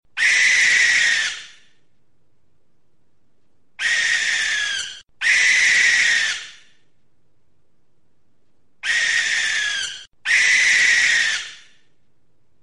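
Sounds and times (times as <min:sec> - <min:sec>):
barn owl screeching in Gloucestershire: 0:00.2 - 0:01.7, 0:03.8 - 0:06.8, 0:08.8 - 0:11.8.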